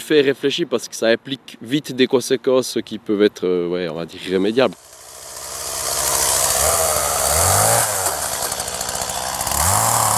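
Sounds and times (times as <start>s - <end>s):
speech: 0.1s - 4.9s
chainsaw revving: 4.6s - 10.1s.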